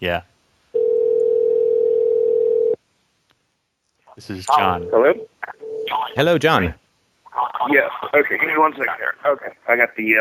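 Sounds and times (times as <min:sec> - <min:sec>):
speech: 0:00.0 - 0:00.3, 0:04.2 - 0:06.8, 0:07.4 - 0:10.1
telephone dial tone on an outgoing call: 0:00.8 - 0:02.8.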